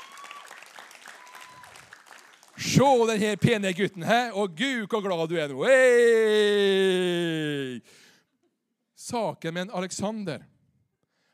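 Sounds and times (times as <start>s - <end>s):
audience applause at a youth meeting: 0.0s - 3.8s
speech: 2.7s - 8.0s, 9.1s - 10.5s.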